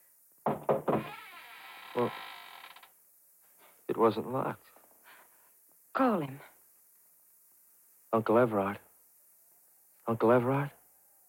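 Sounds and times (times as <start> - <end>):
loud hard knocking on a wooden room door: 0.4 - 1.2
speech: 2.0 - 2.3, 4.0 - 4.8, 6.0 - 6.5, 8.1 - 8.8, 10.1 - 10.8.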